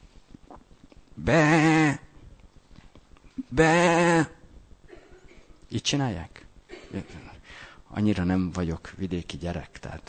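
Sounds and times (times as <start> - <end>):
speech: 1.2 - 1.8, 3.6 - 4.0, 5.8 - 7.3, 7.9 - 10.0
person imitating sheep bleating: 1.2 - 2.1, 3.4 - 4.4.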